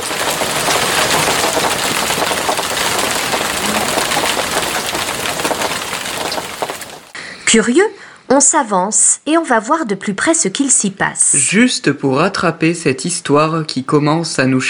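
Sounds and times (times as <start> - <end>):
rain falling: 0.0 - 7.2
speech: 7.5 - 14.6.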